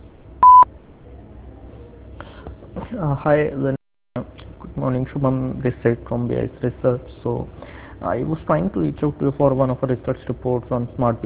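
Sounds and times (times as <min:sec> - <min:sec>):
quiet telephone line hiss: 0:00.0 - 0:11.2
voicemail beep: 0:00.4 - 0:00.7
speech: 0:02.9 - 0:11.2.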